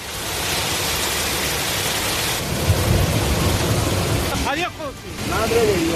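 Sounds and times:
heavy torrential rain roaring: 0:00.0 - 0:05.9
deep rumble of thunder: 0:02.3 - 0:05.9.

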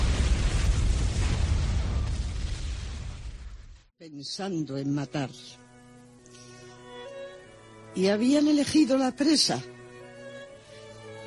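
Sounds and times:
car bomb explosion in a hypermarket car park: 0:00.0 - 0:03.9
speech: 0:04.1 - 0:05.6, 0:08.0 - 0:09.8.

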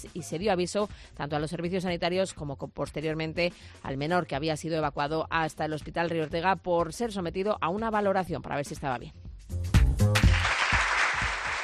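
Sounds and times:
speech: 0:00.0 - 0:10.1
applause: 0:10.0 - 0:11.6.

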